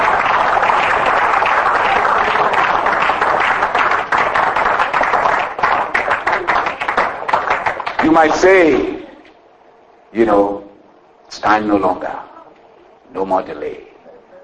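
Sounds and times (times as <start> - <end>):
audience clapping hands: 0.0 - 8.8
speech: 8.2 - 9.0, 10.1 - 10.5, 11.4 - 12.3, 13.1 - 13.9.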